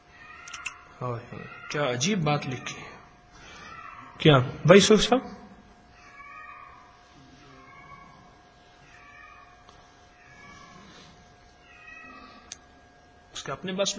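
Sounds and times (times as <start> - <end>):
cat meowing: 0.1 - 4.2, 6.0 - 10.9, 11.6 - 12.5
speech: 1.0 - 2.9, 4.2 - 5.4, 13.6 - 13.9.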